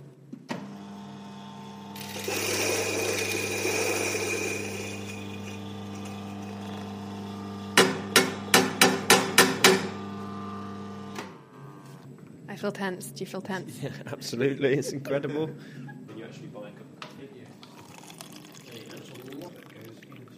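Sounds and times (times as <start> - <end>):
coffee grinder whirring with harsh buzzing motor: 0.7 - 11.2
sharp evenly spaced knocks: 7.8 - 9.9
speech: 12.6 - 15.9.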